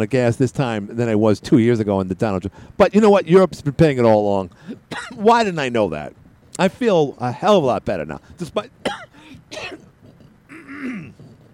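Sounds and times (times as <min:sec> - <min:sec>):
speech: 0:00.0 - 0:09.8
person clearing throat: 0:04.9 - 0:05.2, 0:08.8 - 0:11.4
person coughing in rough gravelly bursts: 0:04.9 - 0:05.2, 0:08.8 - 0:11.3.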